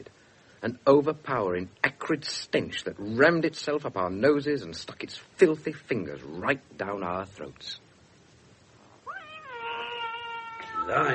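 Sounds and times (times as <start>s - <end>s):
speech: 0.0s - 7.8s, 10.9s - 11.1s
low constant hiss: 0.0s - 11.1s
stray cat giving a drawn-out meow indoors: 9.0s - 11.1s.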